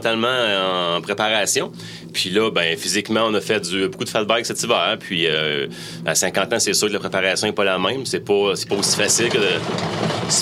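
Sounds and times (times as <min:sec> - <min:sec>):
high-pitched whine or squeal: 0:00.0 - 0:09.6
speech: 0:00.0 - 0:10.4
ski gondola lift machinery rumbling: 0:08.6 - 0:10.4.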